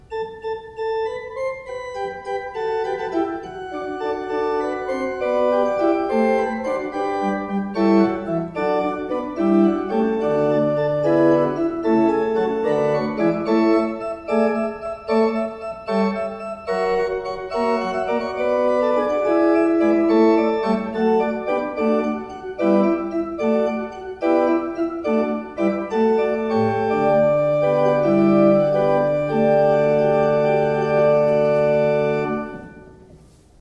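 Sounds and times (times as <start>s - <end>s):
used pipe organ: 0.0s - 33.1s.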